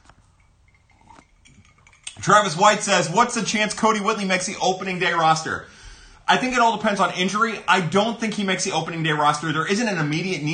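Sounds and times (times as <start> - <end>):
quiet clatter: 0.0 - 2.3
glasses clinking in a toast: 0.1 - 2.8
speech: 2.2 - 10.5.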